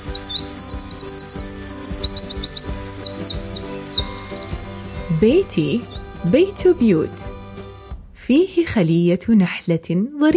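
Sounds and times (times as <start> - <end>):
small birds chirping in garden lemon, orange and grape trees: 0.0 - 7.2
steady musical backing with a soft beat: 0.0 - 8.2, 9.3 - 10.3
speech: 5.2 - 7.2, 8.3 - 10.3.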